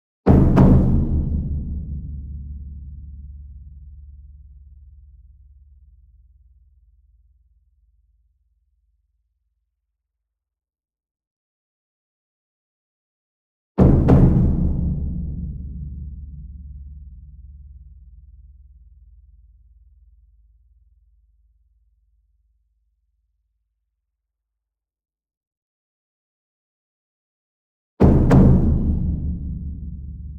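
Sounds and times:
large double concert bass drum in an ensemble: 0:00.3 - 0:04.1, 0:13.8 - 0:17.4, 0:28.0 - 0:30.3.

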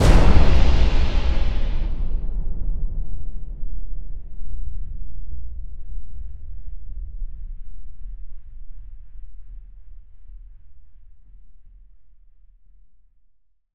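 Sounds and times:
cinematic metal impact sting: 0:00.0 - 0:03.1.

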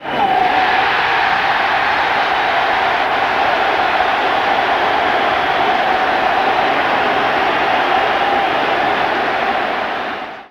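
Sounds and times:
baseball crowd cheering excitedly: 0:00.0 - 0:10.4.

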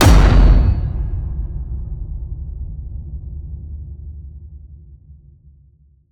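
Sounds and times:
massive cinematic hits: 0:00.0 - 0:03.7.

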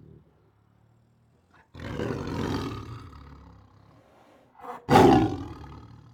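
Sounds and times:
Siberian tiger giving a long rumbling growl: 0:01.5 - 0:06.1.

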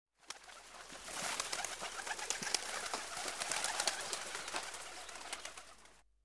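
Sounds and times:
pigeons taking off: 0:00.2 - 0:06.0.

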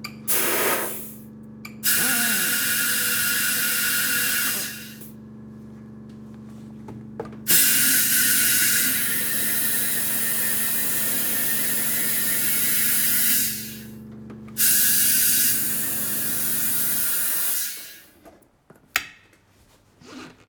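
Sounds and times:
car air pump: 0:00.3 - 0:01.2, 0:01.8 - 0:05.1, 0:07.4 - 0:14.0, 0:14.6 - 0:18.2.

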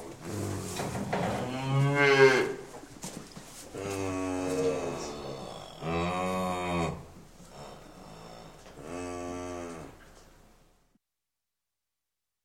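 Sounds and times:
cow mooing: 0:00.3 - 0:02.7, 0:03.7 - 0:10.1.

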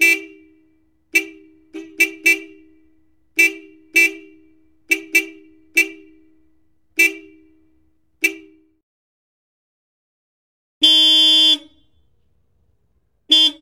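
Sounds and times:
car horns: 0:00.0 - 0:08.8, 0:10.8 - 0:12.2, 0:13.2 - 0:13.5.

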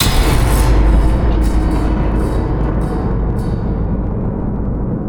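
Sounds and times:
cinematic metal impacts: 0:00.0 - 0:04.9.

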